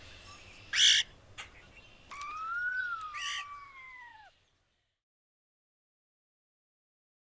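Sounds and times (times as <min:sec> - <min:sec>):
European starling song: 0:00.0 - 0:05.0.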